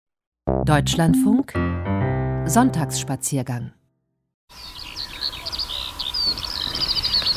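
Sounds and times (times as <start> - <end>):
speech: 0.7 - 1.9, 2.5 - 3.8
birds singing as they fly overhead: 4.5 - 7.3.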